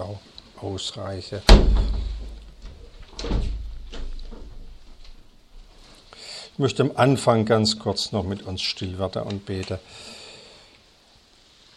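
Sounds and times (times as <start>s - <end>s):
speech: 0.0s - 2.1s, 6.6s - 10.2s
low steady hum: 1.4s - 9.1s
door being shut: 1.5s - 5.0s.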